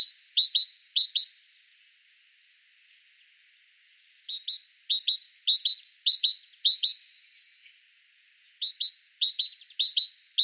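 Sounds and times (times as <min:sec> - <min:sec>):
speech: 0:00.0 - 0:01.7, 0:04.3 - 0:07.4, 0:08.6 - 0:10.4
great tit chirping: 0:00.0 - 0:02.2, 0:04.2 - 0:07.7, 0:08.5 - 0:10.4.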